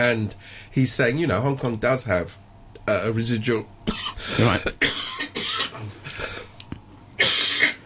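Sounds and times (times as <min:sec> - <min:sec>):
speech: 0:00.0 - 0:05.1
harsh coughing: 0:03.9 - 0:06.5, 0:07.2 - 0:07.8.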